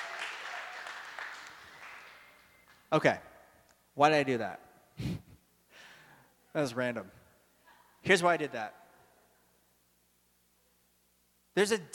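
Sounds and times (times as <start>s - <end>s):
audience applause: 0.0s - 2.7s
speech: 2.9s - 3.3s, 4.0s - 5.3s, 6.6s - 7.2s, 8.0s - 8.8s, 11.6s - 11.9s.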